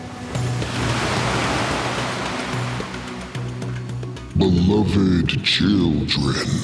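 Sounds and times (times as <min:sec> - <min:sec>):
ocean waves breaking on shore: 0:00.0 - 0:04.4
speech: 0:04.4 - 0:06.6.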